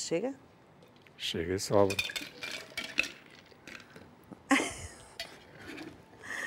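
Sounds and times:
speech: 0.1s - 0.5s, 1.2s - 2.4s
ice rattling in a metal cocktail shaker: 1.8s - 4.0s.

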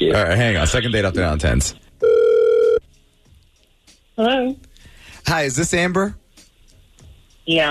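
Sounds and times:
speech: 0.0s - 1.8s, 4.2s - 4.6s, 5.2s - 6.2s, 7.5s - 7.7s
telephone line electronic ringback tone: 2.0s - 2.8s.

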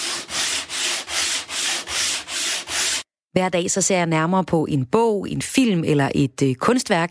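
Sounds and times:
coarse 80-grit sandpaper rasping back and forth: 0.0s - 3.1s
speech: 3.4s - 7.0s.

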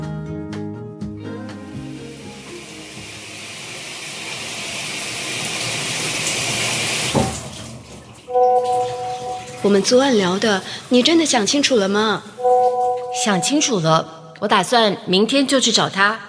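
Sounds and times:
water running from a tap to fill a bath: 1.7s - 13.5s
brief tonal notes: 8.3s - 9.9s, 12.4s - 13.9s
speech: 9.6s - 12.3s, 13.2s - 16.2s.

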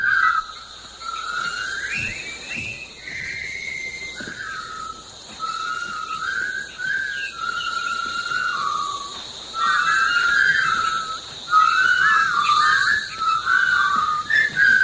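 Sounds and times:
jaunty military march tune from a film whistled: 0.0s - 14.8s.

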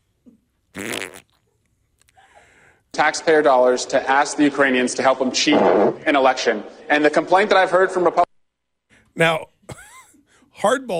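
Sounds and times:
fart: 0.7s - 1.4s
speech: 0.8s - 1.2s, 3.0s - 8.3s, 9.2s - 9.5s, 10.6s - 10.9s.

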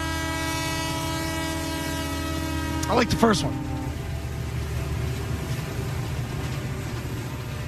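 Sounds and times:
commuter rail train horn blaring: 0.0s - 4.3s
rumble of rail cars running: 0.0s - 7.6s
speech: 2.9s - 3.7s.

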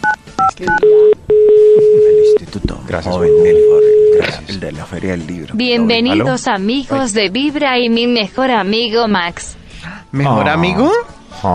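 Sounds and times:
dual-tone telephone keypad beeps: 0.0s - 2.4s
telephone dialing tone: 0.0s - 2.4s, 3.3s - 4.2s
speech: 0.6s - 1.1s, 2.5s - 11.5s.

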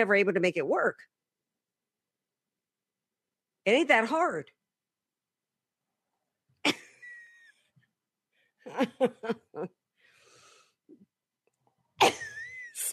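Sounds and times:
speech: 0.0s - 1.2s, 3.6s - 4.6s, 8.7s - 9.8s
laughter: 8.6s - 9.7s
raspy wheezy breath: 10.0s - 10.9s
person coughing from allergy: 12.0s - 12.9s.

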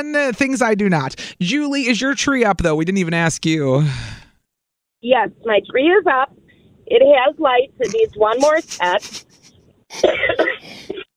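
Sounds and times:
speech: 0.0s - 4.2s, 5.0s - 9.3s, 9.9s - 11.0s
loud rasping cough: 9.9s - 11.1s.

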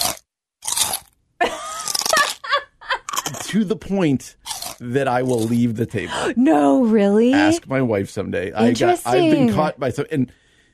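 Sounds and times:
loud crunchy chewing: 0.0s - 1.2s, 1.8s - 2.4s, 3.0s - 3.6s, 4.4s - 5.7s
speech: 3.5s - 10.4s.

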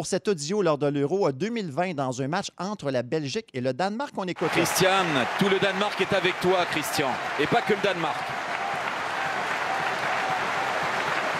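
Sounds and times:
speech: 0.0s - 8.4s
stadium crowd applauding at a football match: 4.4s - 11.3s.

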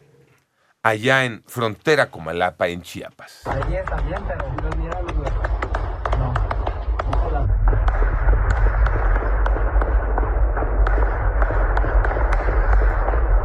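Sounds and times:
speech: 0.8s - 4.9s
rapid bursts of gunfire: 3.4s - 13.4s
low rumble: 3.5s - 13.4s.

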